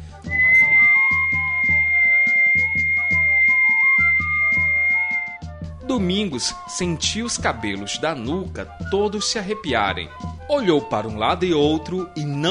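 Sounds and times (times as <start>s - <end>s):
eerie human whistling on an empty market street at night: 0.2s - 5.4s
speech: 5.9s - 12.4s.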